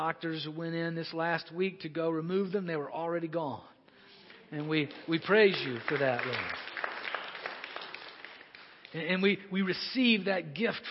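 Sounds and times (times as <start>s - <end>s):
speech: 0.0s - 3.8s, 4.5s - 6.7s, 8.9s - 10.8s
crowd clapping in applause: 4.2s - 9.3s.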